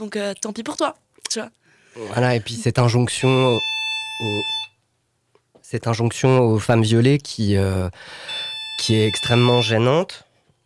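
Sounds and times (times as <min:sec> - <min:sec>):
speech: 0:00.0 - 0:04.6, 0:05.7 - 0:10.2
telephone electronic ringing beeps: 0:03.1 - 0:04.8, 0:08.3 - 0:09.8.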